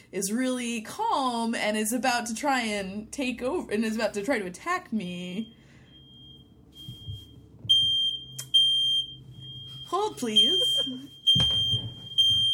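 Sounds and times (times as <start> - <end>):
speech: 0.1 - 5.6, 10.0 - 11.6
shrill electronic alarm: 5.3 - 12.5
loud alarm beeps: 5.4 - 12.5.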